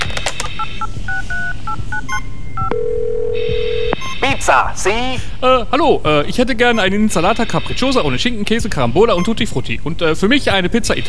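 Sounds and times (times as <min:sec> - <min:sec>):
steady tone from the phone line: 0:00.5 - 0:04.0
speech: 0:00.6 - 0:11.0.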